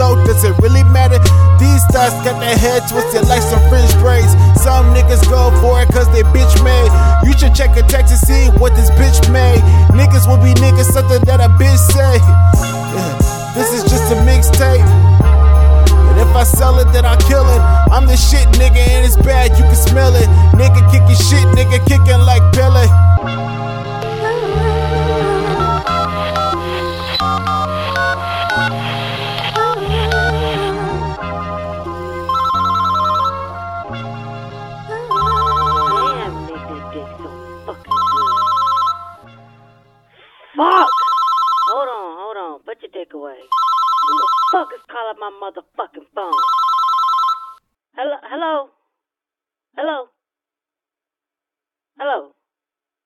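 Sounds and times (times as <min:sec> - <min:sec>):
dense music: 0:00.0 - 0:32.2
speech: 0:00.4 - 0:01.2, 0:02.0 - 0:15.1, 0:16.2 - 0:23.5, 0:42.8 - 0:46.7, 0:48.0 - 0:48.8, 0:49.8 - 0:50.1, 0:52.0 - 0:52.4
telephone ringing unanswered: 0:32.3 - 0:33.6, 0:35.1 - 0:36.3, 0:37.9 - 0:39.2, 0:40.6 - 0:42.1, 0:43.5 - 0:44.9, 0:46.3 - 0:47.6.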